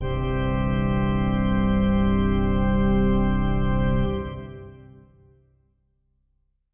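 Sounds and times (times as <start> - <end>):
heavy pipe organ synth keys in C: 0.0 - 5.3.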